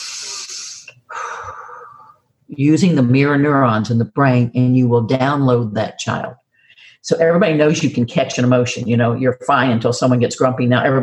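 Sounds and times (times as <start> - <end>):
slow calming breathing demonstrated aloud: 0.0 - 2.2
speech: 2.5 - 6.4, 7.0 - 11.0.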